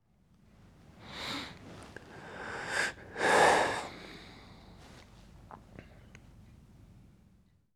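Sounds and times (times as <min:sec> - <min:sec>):
person sighing while sleeping: 0:02.0 - 0:04.0.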